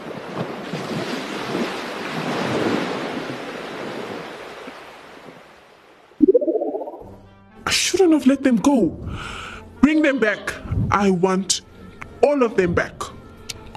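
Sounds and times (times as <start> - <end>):
sea surf crashing on the shore: 0.0 - 6.0
speech: 8.1 - 11.6, 12.2 - 13.0.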